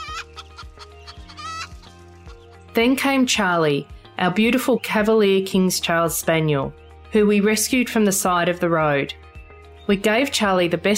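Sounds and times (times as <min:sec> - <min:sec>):
hens clucking and squawking in a hen house: 0:00.0 - 0:02.4
speech: 0:02.8 - 0:09.2, 0:09.9 - 0:10.9.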